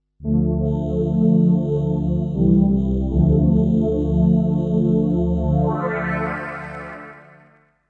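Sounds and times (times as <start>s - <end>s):
classic synthesizer pad: 0.5s - 7.7s.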